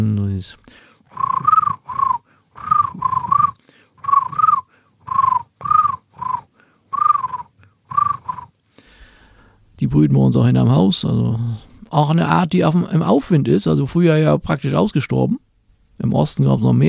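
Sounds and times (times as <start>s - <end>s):
speech: 0.0s - 0.8s, 9.9s - 16.8s
voice imitating common crane trumpeting call: 1.1s - 8.5s.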